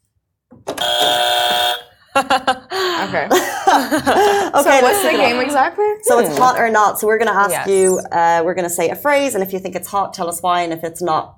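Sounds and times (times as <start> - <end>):
harsh game show buzzer: 0.8 - 2.0
laughter: 2.1 - 6.7
speech: 2.2 - 11.3.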